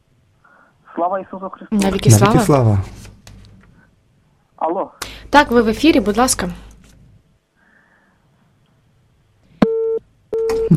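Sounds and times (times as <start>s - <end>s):
speech: 1.0s - 3.0s, 4.6s - 6.7s
telephone busy signal beeps after a dropped call on a live phone-in: 9.6s - 10.7s.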